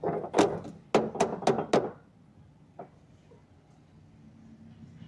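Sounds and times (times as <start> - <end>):
wooden knocks on a mansion door: 0.3 - 2.0.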